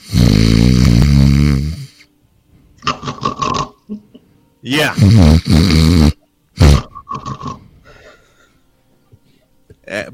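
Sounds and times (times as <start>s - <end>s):
voice imitating loud snoring: 0.0s - 2.1s, 2.8s - 3.8s, 4.9s - 7.6s
speech: 0.2s - 0.7s, 4.8s - 5.8s.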